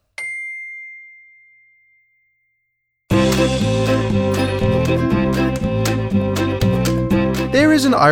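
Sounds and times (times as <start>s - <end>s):
single clear bell ding: 0.2s - 2.7s
loud music with a steady beat: 3.1s - 8.0s
speech: 7.8s - 8.0s.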